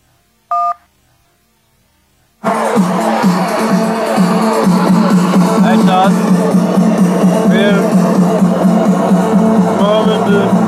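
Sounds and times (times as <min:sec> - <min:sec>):
telephone keypad tone from a button press in a voicemail menu: 0:00.5 - 0:00.8
loud dense burst of noise: 0:02.3 - 0:10.6
speech: 0:02.8 - 0:03.0.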